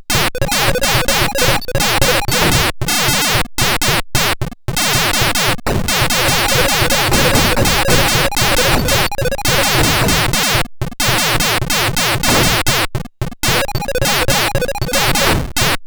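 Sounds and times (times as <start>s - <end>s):
arcade ambience: 0.1s - 3.4s, 4.9s - 12.8s, 13.4s - 15.8s.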